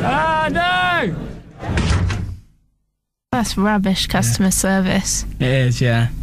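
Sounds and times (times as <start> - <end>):
speech: 0.0 - 1.8, 3.4 - 6.2
door slamming shut: 1.6 - 2.5.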